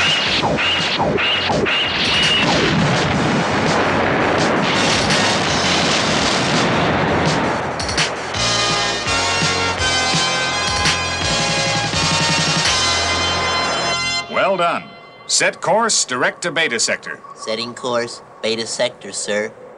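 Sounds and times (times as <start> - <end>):
spaceship weapons firing: 0.0 - 8.5
explosions: 0.0 - 14.8
whooshing bursts: 0.0 - 19.7
speech: 1.0 - 1.8, 15.4 - 19.6.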